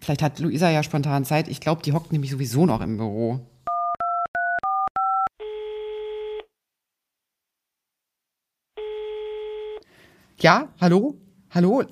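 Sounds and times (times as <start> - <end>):
speech: 0.0 - 3.5, 10.4 - 11.9
phone keypad beeps while dialing: 3.7 - 5.3
long steady telephone tones: 3.7 - 6.4, 8.8 - 9.8.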